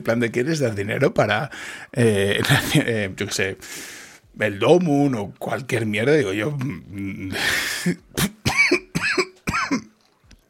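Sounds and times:
speech: 0.0 - 8.4
person with an irritated throat coughing: 7.5 - 9.9.

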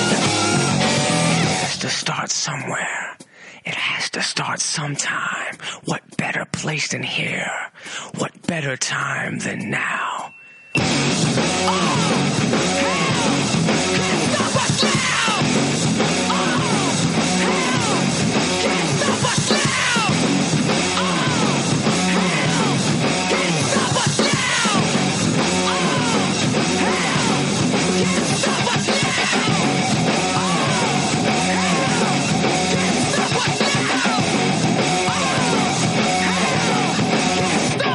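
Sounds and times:
heavy distorted hard rock guitars: 0.0 - 2.5, 10.7 - 37.9
speech: 4.2 - 13.0, 13.6 - 16.2
pounding hard rock drums: 10.8 - 37.9
aggressive shouted hard rock vocals: 11.5 - 37.9.

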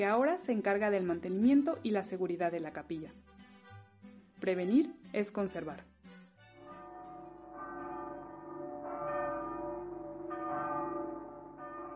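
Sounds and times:
speech: 0.0 - 3.4, 4.4 - 5.9
church bells ringing: 6.7 - 11.9.

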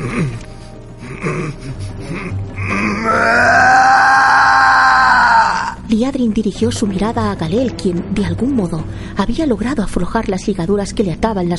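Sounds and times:
speech: 0.2 - 0.4, 6.2 - 11.5
man grunting and groaning in pain: 1.1 - 5.8
man screaming in pain: 2.7 - 5.8.

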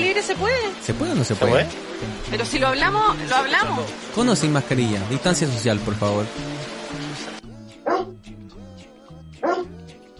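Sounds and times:
speech: 0.2 - 7.5
dog barking: 7.9 - 8.1, 9.4 - 9.7.

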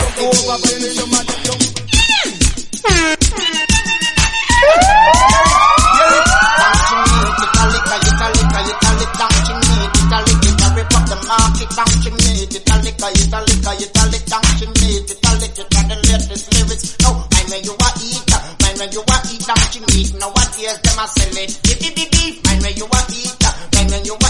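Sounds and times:
pounding music beat: 0.0 - 24.2
speech: 0.3 - 1.8, 2.8 - 3.5
police-style siren wailing: 4.2 - 12.2.

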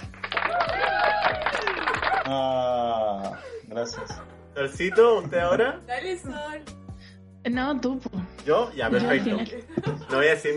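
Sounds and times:
recorded crowd applause: 0.0 - 2.5
people cheering: 0.0 - 3.2
laughter: 0.8 - 5.7, 8.8 - 10.5
speech: 2.3 - 2.7, 3.8 - 6.8, 7.4 - 10.5.

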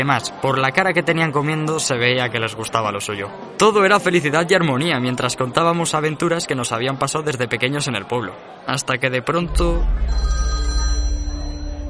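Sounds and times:
speech: 0.0 - 10.6
low rumbling hum: 9.5 - 11.8
mobile phone ringing with a steady electronic tone: 9.9 - 11.8.

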